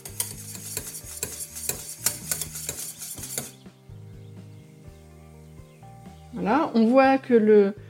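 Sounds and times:
metal whisk beating melting caramel in a pan for donuts: 0.0 - 3.6
speech: 6.4 - 7.8.

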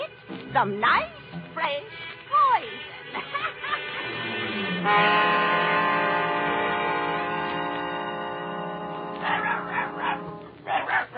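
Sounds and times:
steady sustained humming tone: 0.0 - 11.1
speech: 0.5 - 3.6, 4.6 - 5.5
laughter: 3.0 - 4.2
small dog yapping: 9.2 - 11.1.

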